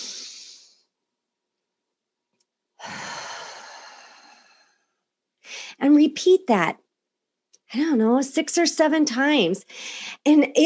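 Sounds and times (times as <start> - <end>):
slow deep breath in and out: 2.8 - 5.8
speech: 5.8 - 6.8, 7.7 - 10.6.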